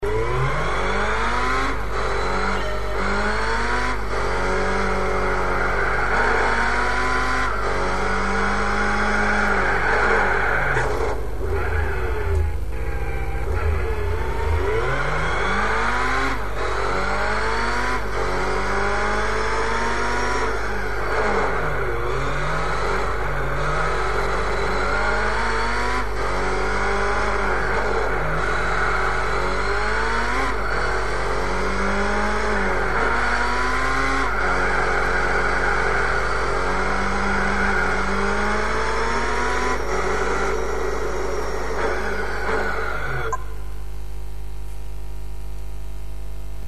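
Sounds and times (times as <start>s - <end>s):
Camaro race car engine: 0.0s - 46.6s.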